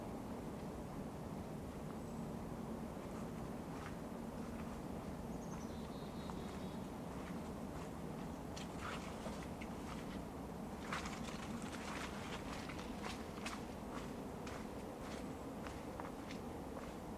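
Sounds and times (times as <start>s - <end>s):
low rumble of traffic by a winter forest park: 0.0s - 17.1s
footsteps crunching on snow in a winter forest park: 3.0s - 10.2s, 10.8s - 17.0s.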